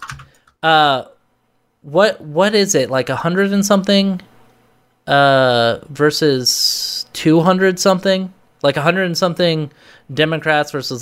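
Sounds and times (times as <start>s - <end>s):
computer keyboard taps: 0.0s - 0.5s
speech: 0.6s - 1.1s, 1.8s - 4.3s, 5.0s - 10.9s.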